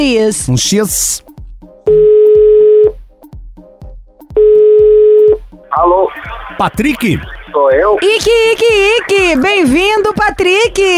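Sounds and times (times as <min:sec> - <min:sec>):
speech: 0:00.0 - 0:01.2, 0:05.8 - 0:10.9
telephone ringback tone: 0:01.9 - 0:03.0, 0:04.4 - 0:05.4.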